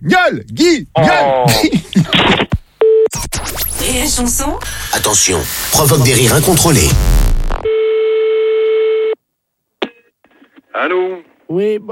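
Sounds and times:
speech: 0.0s - 2.6s, 3.2s - 7.3s, 10.8s - 11.9s
telephone tone while placing a phone call: 7.7s - 9.2s.

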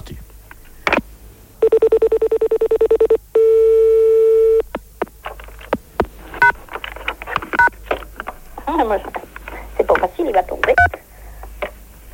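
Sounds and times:
telephone keypad beeps: 1.6s - 4.6s
long steady telephone tone: 1.6s - 4.7s
clicks and handling noises: 5.2s - 11.8s
speech: 8.9s - 9.1s.

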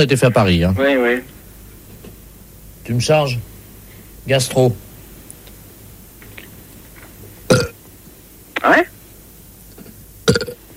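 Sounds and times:
speech: 0.0s - 1.4s, 2.9s - 3.5s, 4.2s - 4.8s
loud burps: 7.5s - 7.8s, 10.2s - 10.6s.

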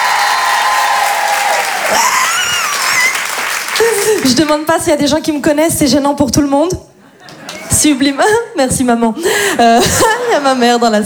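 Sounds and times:
high whoops from women in the audience: 0.0s - 4.0s
live stage audience of women applauding and cheering: 0.0s - 4.5s
speech: 1.9s - 2.2s, 3.8s - 6.9s, 7.8s - 11.0s.

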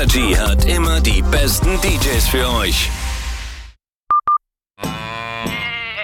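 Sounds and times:
speech: 0.1s - 3.1s
burst of noise: 2.6s - 3.8s
short electronic beeps: 4.1s - 4.4s
sheep bleating: 4.8s - 6.0s.

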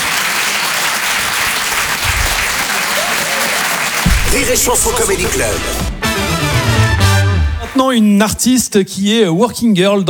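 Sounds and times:
audience applauding at a comedy club evening show: 0.0s - 7.8s
speech: 4.4s - 5.9s, 7.8s - 10.0s.

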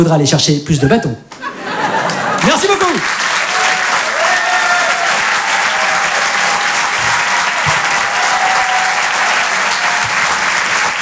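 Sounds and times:
speech: 0.0s - 1.8s
laughter: 1.3s - 10.9s
large audience applauding a comedian after his live set: 1.5s - 11.0s.

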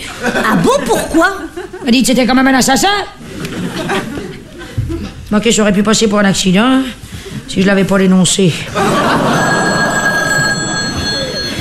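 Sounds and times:
laughter: 0.0s - 2.0s, 3.2s - 5.2s, 8.7s - 11.5s
speech: 0.2s - 3.2s, 5.3s - 9.2s
telephone ringing: 8.9s - 11.5s.

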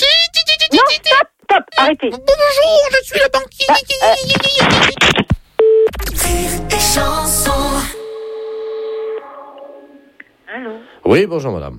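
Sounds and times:
speech: 0.7s - 8.0s, 10.5s - 11.7s
fax machine transmission tones: 5.6s - 9.8s.

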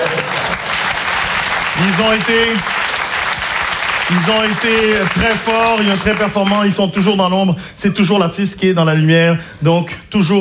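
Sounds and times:
audience applause: 0.0s - 7.1s
speech: 1.8s - 2.8s, 4.1s - 10.3s.

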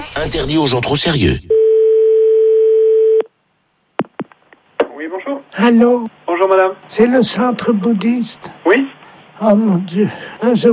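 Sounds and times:
speech: 0.2s - 1.5s, 5.6s - 10.7s
telephone dial tone after hanging up: 1.5s - 3.3s.

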